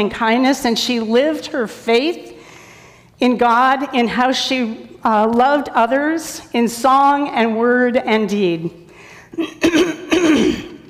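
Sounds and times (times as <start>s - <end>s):
speech: 0.0s - 2.3s, 3.2s - 10.6s
person clearing a froggy throat: 9.4s - 10.8s.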